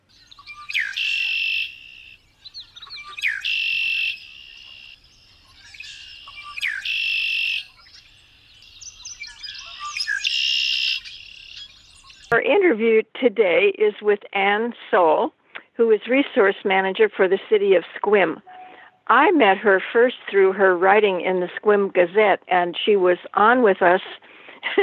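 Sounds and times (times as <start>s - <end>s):
Red-winged Blackbird song: 0.0s - 12.4s
speech: 12.5s - 18.5s, 19.1s - 24.8s.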